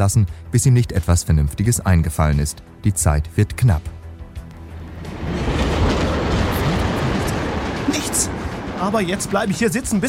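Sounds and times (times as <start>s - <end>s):
speech: 0.0s - 4.0s, 8.2s - 10.0s
speeding train rumbling on railway track: 4.4s - 10.0s.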